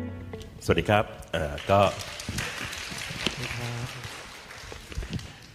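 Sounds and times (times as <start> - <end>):
speech: 0.7 - 2.4
seminar audience applauding: 1.5 - 5.5.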